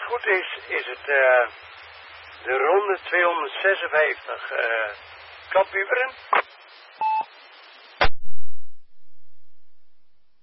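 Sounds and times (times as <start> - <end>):
steady radio hiss: 0.0 - 8.1
speech: 0.1 - 1.8, 2.4 - 6.4
telephone-style tone beep: 7.0 - 7.3.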